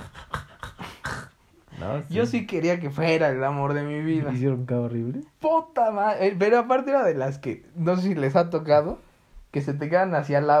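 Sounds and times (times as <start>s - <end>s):
person imitating a woman's choking snore: 0.0s - 1.4s
speech: 1.8s - 10.5s.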